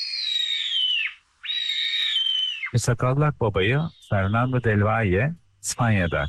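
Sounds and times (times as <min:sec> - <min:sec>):
sparrowhawk calling in Konya Turkey: 0:00.0 - 0:02.8, 0:03.6 - 0:04.9, 0:05.7 - 0:06.2
speech: 0:02.7 - 0:06.2.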